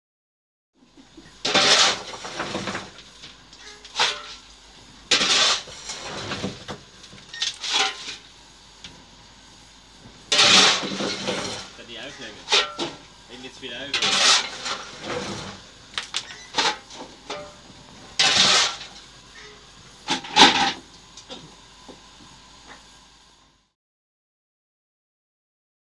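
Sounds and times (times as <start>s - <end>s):
shoveling coal into a steam engine: 1.4s - 8.3s, 10.2s - 20.9s.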